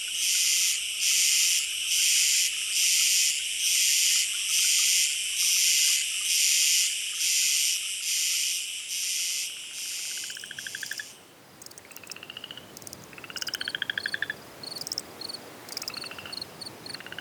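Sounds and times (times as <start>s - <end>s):
steady high hiss of insects: 0.1s - 17.1s
night chorus of frogs trilling and pulsing: 9.5s - 17.1s.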